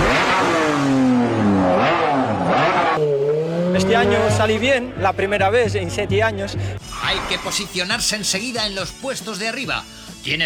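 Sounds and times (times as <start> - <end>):
Formula 1 race car engine accelerating through gear shifts: 0.0 - 4.9
speech: 3.9 - 10.4.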